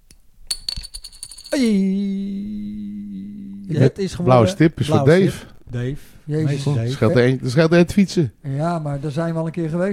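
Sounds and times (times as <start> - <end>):
small plastic coin tossed and clattering: 0.5 - 1.6
speech: 1.5 - 2.3, 3.7 - 9.9.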